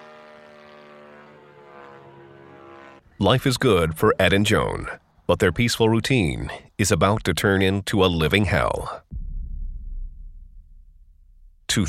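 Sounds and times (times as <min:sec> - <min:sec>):
small radio control model airplane engine whining: 0:00.0 - 0:03.2
speech: 0:03.2 - 0:09.0.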